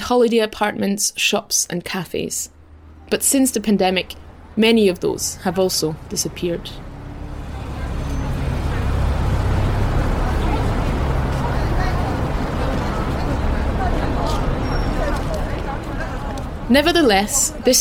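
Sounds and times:
steady rumbling traffic on an Edinburgh street: 0:00.0 - 0:17.7
speech: 0:00.1 - 0:06.9, 0:16.7 - 0:17.7
faint Edinburgh tram bell ringing: 0:04.9 - 0:09.6
distant murmur of voices from tourists and shoppers: 0:05.4 - 0:17.7.

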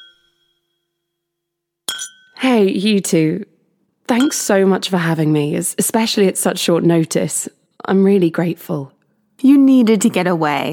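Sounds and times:
glasses clinking in a toast: 0:00.0 - 0:01.0, 0:01.9 - 0:02.4
speech: 0:02.0 - 0:03.5, 0:04.1 - 0:10.7.

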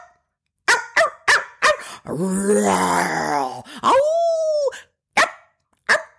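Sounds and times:
miniature poodle barking high-pitched: 0:00.7 - 0:01.9, 0:05.2 - 0:06.1
speech: 0:02.0 - 0:04.1.

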